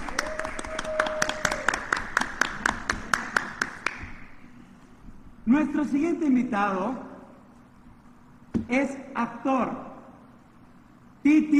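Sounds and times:
sparse audience applause for a theater actress and teacher: 0.0s - 4.1s
steady hum: 0.0s - 11.5s
speech: 5.5s - 7.1s, 8.7s - 9.9s, 11.2s - 11.5s.

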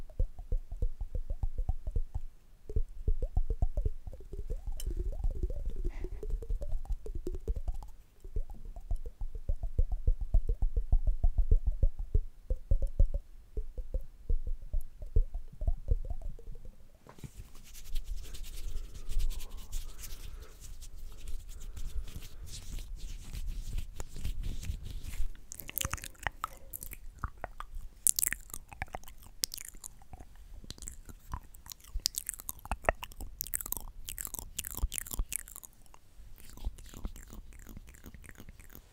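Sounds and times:
tongue clicks: 0.0s - 16.9s, 17.6s - 38.9s
wet ASMR mouth sounds: 0.0s - 38.9s.

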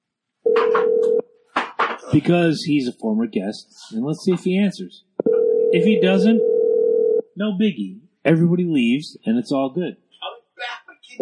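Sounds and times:
telephone dial tone: 0.5s - 1.2s, 5.3s - 7.2s
speech: 2.1s - 5.1s, 5.7s - 6.5s, 7.4s - 10.0s.

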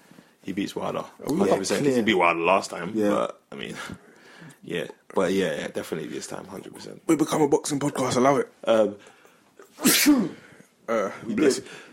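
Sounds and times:
speech: 0.4s - 9.2s, 9.8s - 11.9s
loud sharp sneeze: 9.6s - 10.4s.

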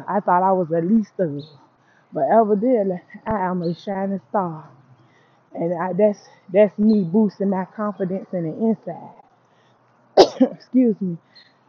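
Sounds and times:
speech: 0.0s - 4.8s, 5.5s - 9.2s, 10.2s - 11.5s
person coughing with a raspy catch: 10.2s - 10.6s.

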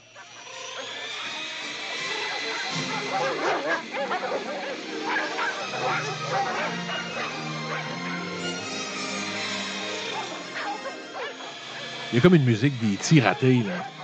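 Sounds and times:
several dogs barking and yipping: 0.1s - 12.1s, 13.7s - 14.0s
dogs whimpering: 0.2s - 14.0s
laughter: 12.1s - 14.0s
speech: 12.1s - 14.0s.

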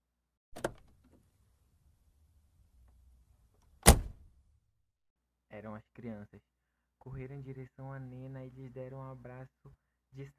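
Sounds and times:
car doors shutting: 0.6s - 0.9s, 3.8s - 4.2s
speech: 5.6s - 10.3s.

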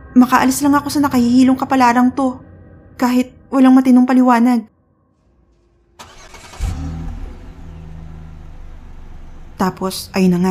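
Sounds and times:
speech: 0.2s - 4.7s, 9.6s - 10.4s
large bus engine starting and pulling away: 5.3s - 10.4s.

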